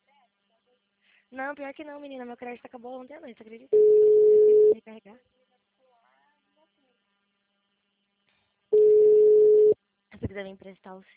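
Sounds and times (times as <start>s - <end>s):
speech: 1.3s - 5.4s, 10.2s - 11.1s
telephone line tone from a mobile phone placing a call: 3.8s - 4.8s, 8.8s - 9.8s.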